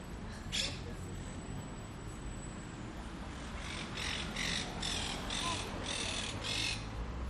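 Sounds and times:
noise of a busy open-air place: 0.0s - 7.2s
green parrots squawking outdoors: 3.6s - 6.9s.

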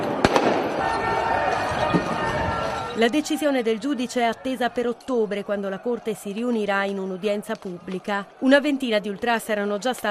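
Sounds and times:
firecracker and paper bomb blasts: 0.0s - 2.8s
crowd noise: 0.0s - 10.0s
speech: 3.0s - 10.0s.

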